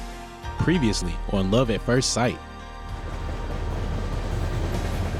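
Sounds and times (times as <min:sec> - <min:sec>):
speech: 0:00.7 - 0:02.5
train rumbling: 0:02.6 - 0:05.1.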